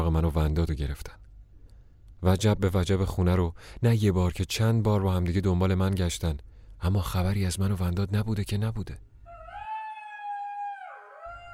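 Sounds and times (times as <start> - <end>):
speech: 0.0 - 1.2, 2.2 - 9.1
jackal howling: 9.2 - 11.5.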